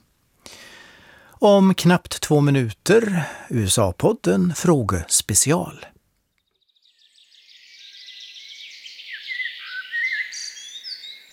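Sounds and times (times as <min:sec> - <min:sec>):
speech: 0:01.4 - 0:06.0
dense birdsong with rapid trilling and warbling phrases: 0:06.2 - 0:11.3.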